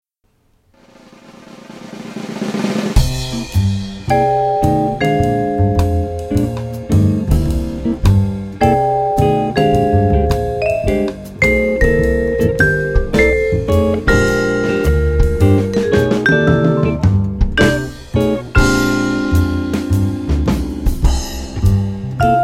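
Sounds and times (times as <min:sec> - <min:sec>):
jazz vibraphone: 0:03.3 - 0:22.4.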